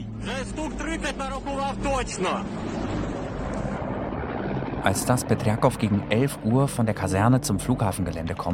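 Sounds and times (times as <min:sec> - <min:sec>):
swarm of black Russian helicopters approaching Hostomel airport: 0:00.0 - 0:08.5
speech: 0:00.4 - 0:02.8, 0:04.8 - 0:08.5
gusty wind-like noise: 0:02.4 - 0:06.5.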